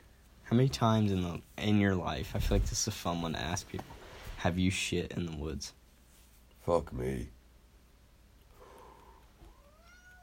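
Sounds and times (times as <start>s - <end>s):
low hiss: 0.0s - 10.2s
speech: 0.5s - 5.8s, 6.6s - 7.4s
pet cat meowing faintly: 9.5s - 10.2s.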